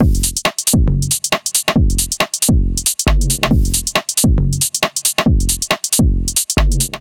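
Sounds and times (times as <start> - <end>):
drum beat at 137 bpm: 0.0 - 6.9.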